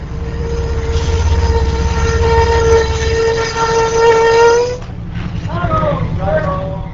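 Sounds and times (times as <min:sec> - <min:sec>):
passenger train horn blast: 0:00.0 - 0:04.9
passenger train rumbling as it pulls into a station: 0:00.0 - 0:06.9.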